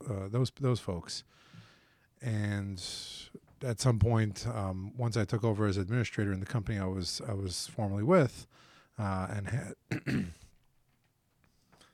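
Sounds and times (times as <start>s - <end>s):
speech: 0.1s - 1.6s, 2.2s - 10.4s
short sharp cough: 9.9s - 10.5s.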